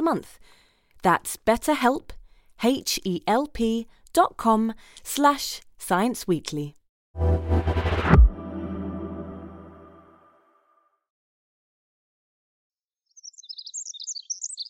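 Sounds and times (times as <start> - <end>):
speech: 0.0 - 7.6
ringing musical chord: 7.2 - 10.4
Pacific Wren singing: 13.0 - 14.6.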